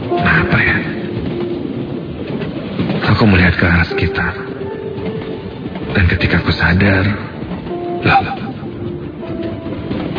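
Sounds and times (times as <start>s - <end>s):
passenger train carriage rolling along the rails with low rumble: 0.0s - 10.1s
speech: 3.2s - 4.5s, 6.0s - 7.3s, 8.0s - 8.4s.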